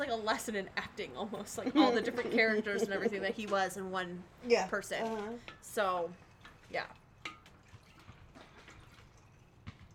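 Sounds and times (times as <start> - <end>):
speech: 0.0 - 7.0
liquid swirling as a drink is stirred: 6.2 - 9.9.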